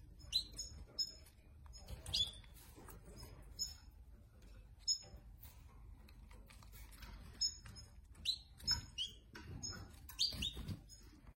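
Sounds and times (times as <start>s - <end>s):
blue-billed fire-breasted bird singing: 0.2s - 3.9s, 4.8s - 5.2s, 7.3s - 11.3s.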